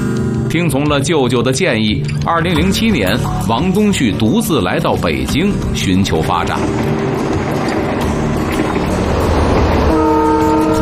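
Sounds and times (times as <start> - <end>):
speech: 0.5 - 7.2
old green passenger train rumbling: 2.5 - 10.8
sustained train horn tone: 9.7 - 10.8.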